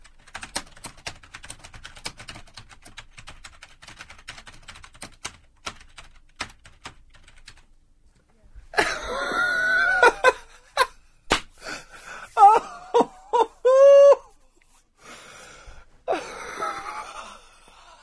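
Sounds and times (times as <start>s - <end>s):
typing on a computer keyboard: 0.0s - 7.7s
laughter: 8.8s - 11.0s, 12.4s - 14.0s.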